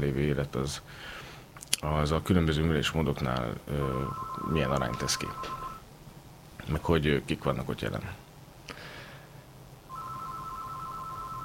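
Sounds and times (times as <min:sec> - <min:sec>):
speech: 0:00.0 - 0:05.6, 0:06.7 - 0:08.2
telephone ringing with electronic warbling tone: 0:03.8 - 0:05.8, 0:09.9 - 0:11.4.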